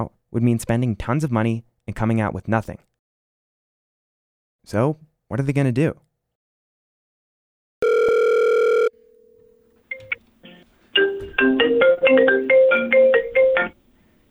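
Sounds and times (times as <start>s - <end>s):
speech: 0.0s - 2.9s, 4.6s - 6.1s
faint hum: 7.8s - 14.2s
telephone ringing: 7.8s - 14.2s.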